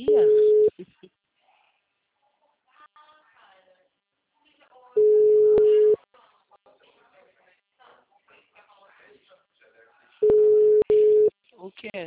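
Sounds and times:
ringback tone of an outgoing telephone call: 0.0s - 0.7s, 5.0s - 6.0s, 10.2s - 11.3s.

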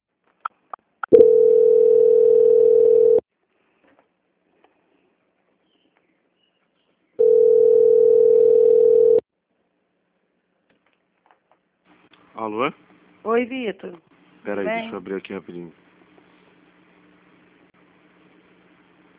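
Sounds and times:
steady mid-pitched telephone line tone while a call is transferred: 1.1s - 3.3s, 7.2s - 9.2s
speech: 13.4s - 15.8s.

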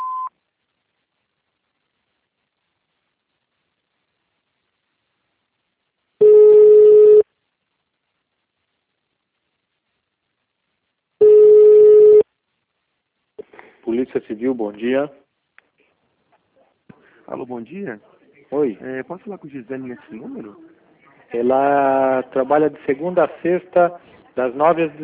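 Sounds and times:
telephone signal beep after an automated answering menu: 0.0s - 0.3s, 6.2s - 7.2s, 11.2s - 12.2s
long steady mid-pitched telephone signal tones: 6.2s - 7.2s, 11.2s - 12.2s
speech: 14.0s - 15.2s, 17.3s - 20.7s, 21.3s - 25.0s.

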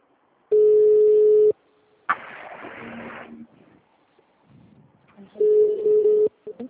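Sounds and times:
telephone ringback beeps as a group call is placed: 0.5s - 1.6s, 5.4s - 6.4s
hiss: 2.1s - 3.4s.

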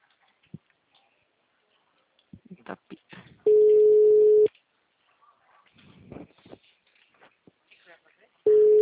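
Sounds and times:
long low-pitched tones of an unanswered telephone call: 3.5s - 4.5s, 8.5s - 8.8s.

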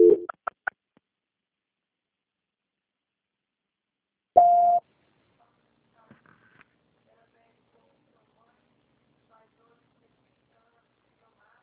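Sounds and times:
telephone tones during call transfer: 0.0s - 0.3s, 4.4s - 4.8s.

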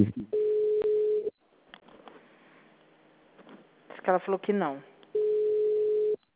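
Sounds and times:
speech: 0.0s - 0.2s, 4.0s - 4.9s
ringback tone on a phone call to a bank branch: 0.4s - 1.3s, 5.2s - 6.2s.

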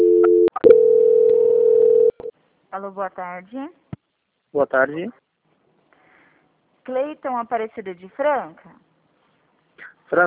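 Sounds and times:
steady telephone tone during a call transfer: 0.0s - 2.3s
speech: 2.8s - 3.8s, 4.5s - 5.2s, 6.9s - 8.8s.

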